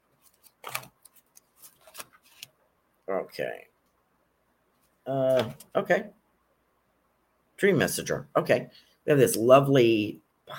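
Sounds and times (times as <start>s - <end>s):
deck of oracle cards being shuffled: 0.2s - 2.5s
speech: 3.1s - 3.7s, 5.0s - 6.2s, 7.6s - 10.5s.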